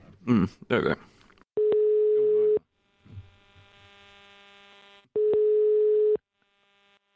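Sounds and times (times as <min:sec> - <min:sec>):
speech: 0:00.2 - 0:01.2
telephone ringback tone while placing a call: 0:01.6 - 0:02.6, 0:05.2 - 0:06.2.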